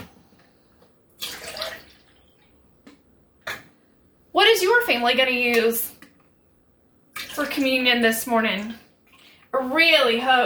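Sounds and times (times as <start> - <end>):
orange juice poured into fancy cups for a family's communion: 1.2 - 2.6
speech: 4.4 - 6.0, 7.4 - 8.8, 9.5 - 10.4.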